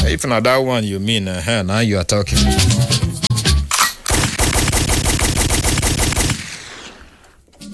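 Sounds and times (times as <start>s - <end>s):
speech: 0.1s - 3.1s
rapid gunfire bursts: 4.1s - 7.3s.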